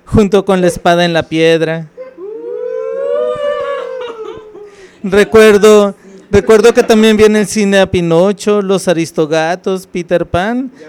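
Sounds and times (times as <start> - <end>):
speech: 0.1 - 1.9, 5.0 - 10.8
coyotes howling: 2.0 - 4.9
laughter: 2.0 - 7.3.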